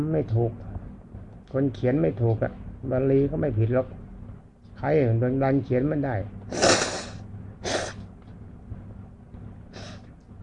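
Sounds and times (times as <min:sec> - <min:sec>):
speech: 0:00.0 - 0:00.7, 0:01.5 - 0:04.0, 0:04.8 - 0:06.7
person blowing nose: 0:06.5 - 0:08.0.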